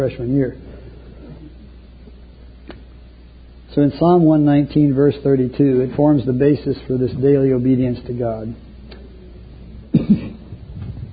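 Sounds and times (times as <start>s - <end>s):
speech: 0.0s - 0.7s, 3.7s - 8.6s
coughing: 9.9s - 10.6s.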